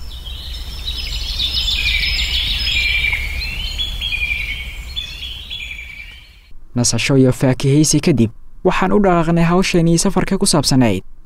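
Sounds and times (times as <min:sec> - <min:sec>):
various birds singing in a lush landscape: 0:00.0 - 0:06.5
steady low rumble: 0:00.0 - 0:09.3
speech: 0:06.8 - 0:11.2.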